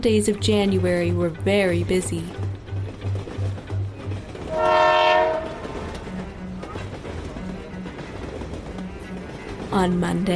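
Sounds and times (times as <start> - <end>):
speech: 0.0 - 2.5, 9.8 - 10.3
train wheels clickety-clack: 0.0 - 10.3
loud sustained train horn blast: 4.4 - 6.4.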